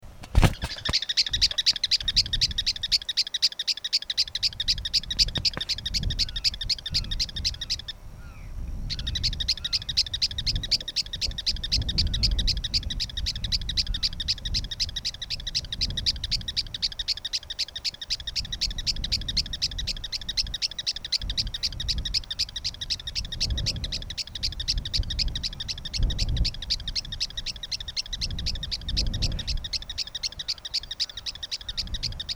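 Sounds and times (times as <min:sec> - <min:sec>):
Campo Miner call: 0:00.5 - 0:32.3.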